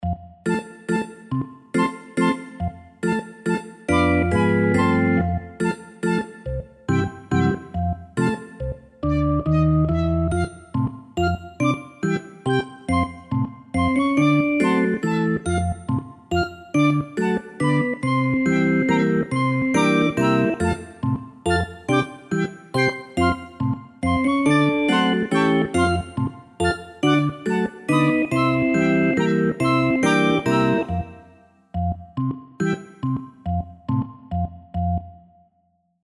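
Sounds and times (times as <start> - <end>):
background music: 0.0 - 35.4.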